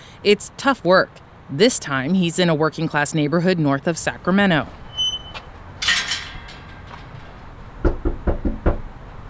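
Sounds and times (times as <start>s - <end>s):
speech: 0.2s - 4.8s
brief rustle or jingle: 4.6s - 7.6s
firm knocks on a front door: 7.8s - 8.9s.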